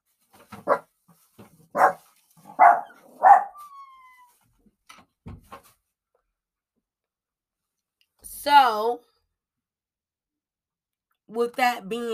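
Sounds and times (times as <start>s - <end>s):
dog barking: 0.6s - 0.9s, 1.7s - 3.7s
speech: 11.6s - 12.1s.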